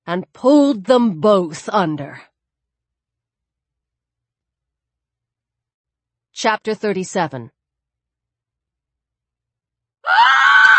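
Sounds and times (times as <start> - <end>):
speech: 0.1 - 2.3, 6.4 - 7.6
woman screeching: 10.0 - 10.7.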